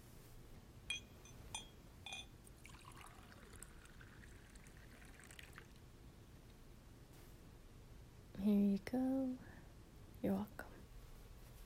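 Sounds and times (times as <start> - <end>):
glass clinking: 0.9 - 3.2
water pouring into a glass: 2.4 - 5.8
speech: 8.5 - 9.5, 10.2 - 10.8.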